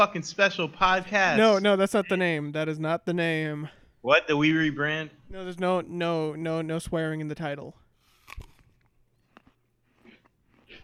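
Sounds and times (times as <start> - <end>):
speech: 0.0 - 8.5
crunchy chewing of peanut butter cereal: 8.0 - 10.8.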